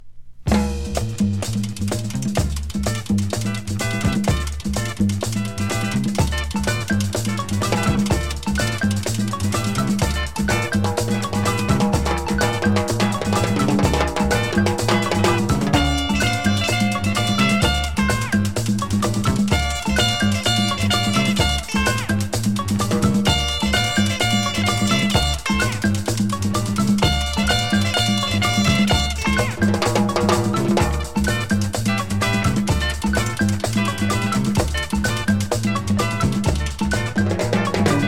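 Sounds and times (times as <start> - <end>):
rumba music: 0.5 - 38.0.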